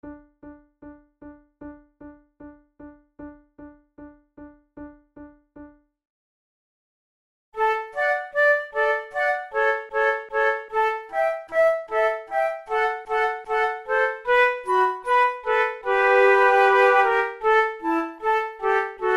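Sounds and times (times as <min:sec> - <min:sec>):
flute playing in a classical trio: 0:07.6 - 0:19.1.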